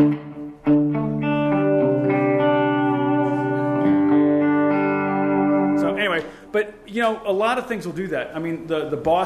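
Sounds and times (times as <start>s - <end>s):
sustained electric guitar chords with soft delay echo: 0.0s - 6.5s
speech: 6.6s - 9.2s.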